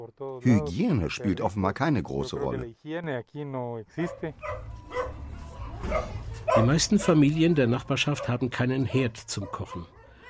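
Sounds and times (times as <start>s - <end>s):
speech: 0.1s - 5.0s, 5.8s - 10.0s
dog barking: 4.0s - 5.2s, 5.8s - 7.4s, 8.1s - 8.4s, 9.3s - 10.2s.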